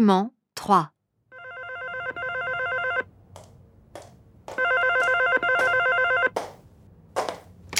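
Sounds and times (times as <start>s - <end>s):
speech: 0.0s - 0.9s
telephone ringing with electronic trilling: 1.3s - 3.1s, 4.6s - 6.4s.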